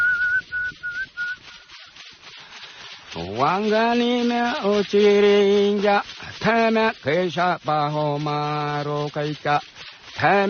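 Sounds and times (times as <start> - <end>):
man whistling a short steady tune: 0.0 - 1.7
speech: 3.1 - 10.4.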